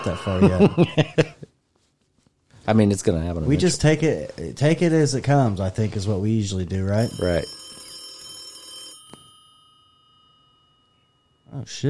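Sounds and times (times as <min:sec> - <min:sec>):
laughter: 0:00.0 - 0:01.5
speech: 0:00.0 - 0:01.5, 0:02.7 - 0:07.6, 0:11.5 - 0:11.8
telephone bell ringing: 0:07.0 - 0:11.5.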